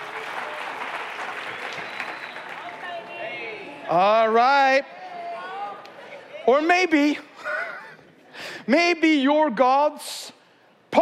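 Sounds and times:
sustained applause from a sizable audience: 0:00.0 - 0:03.7
speech: 0:03.9 - 0:05.0, 0:06.4 - 0:07.3, 0:08.7 - 0:10.3
laughter: 0:05.9 - 0:08.4.

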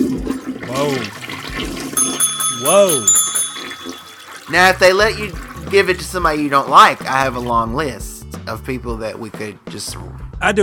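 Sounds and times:
toilet flushing: 0:00.0 - 0:02.0, 0:04.3 - 0:07.7
speech: 0:00.8 - 0:01.2, 0:02.6 - 0:03.2, 0:04.5 - 0:10.6.

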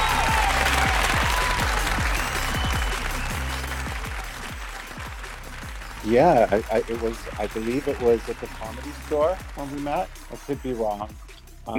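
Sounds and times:
canned applause sound effect: 0:00.0 - 0:11.1
speech: 0:06.1 - 0:11.7.

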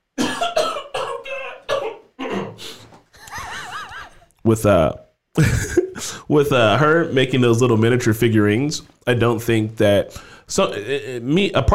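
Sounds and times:
person coughing: 0:00.2 - 0:02.9
throaty strained sounds: 0:00.2 - 0:03.0
laughter: 0:03.2 - 0:04.3, 0:05.4 - 0:06.0
speech: 0:04.4 - 0:05.7, 0:06.3 - 0:11.7.

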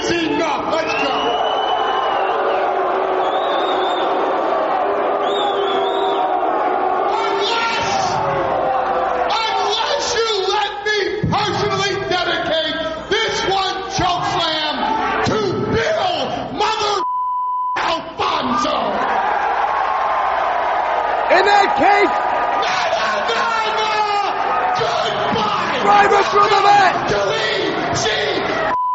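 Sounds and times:
large arena wrestling crowd yelling and cheering: 0:00.0 - 0:16.7, 0:17.8 - 0:28.8
speech: 0:00.1 - 0:01.3.

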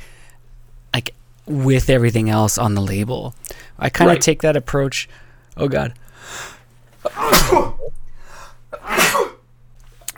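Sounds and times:
speech: 0:01.5 - 0:07.8
person sneezing loudly: 0:07.0 - 0:07.9, 0:08.8 - 0:09.4.

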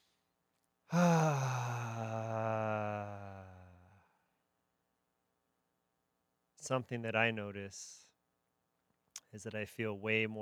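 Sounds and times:
group of people breathing in together: 0:00.9 - 0:03.7
speech: 0:06.7 - 0:08.0, 0:09.3 - 0:10.4.

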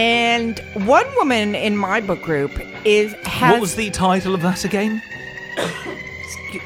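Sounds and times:
speech: 0:00.0 - 0:05.8
person with a cold coughing: 0:05.6 - 0:06.1.

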